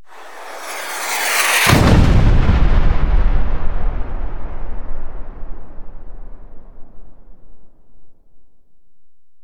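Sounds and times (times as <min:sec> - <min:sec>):
rocket slow pass by: 0:00.0 - 0:07.8
rocket explosive impact: 0:00.1 - 0:07.7.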